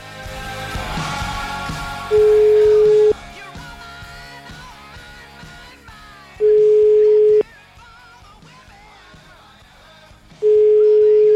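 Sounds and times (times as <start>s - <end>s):
telephone ringback tone beeps while placing a call: 2.1s - 3.2s, 6.4s - 7.4s, 10.4s - 11.3s.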